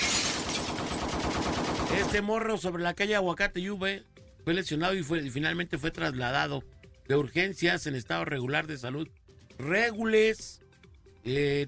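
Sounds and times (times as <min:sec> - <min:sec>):
rapid sustained burst of gunfire: 0:00.0 - 0:02.2
speech: 0:01.9 - 0:10.6, 0:11.2 - 0:11.6.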